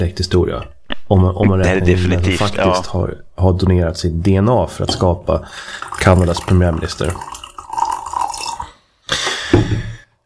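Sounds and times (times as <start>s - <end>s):
speech: 0.0s - 7.4s
coffee being poured into a cup: 5.6s - 8.7s.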